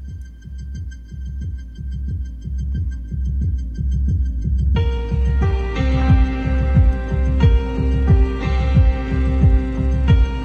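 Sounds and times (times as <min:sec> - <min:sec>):
pulsing low drum beat of a rock song intro: 0:00.0 - 0:10.4
sustained synth chord layer in a rock song intro: 0:04.8 - 0:10.4.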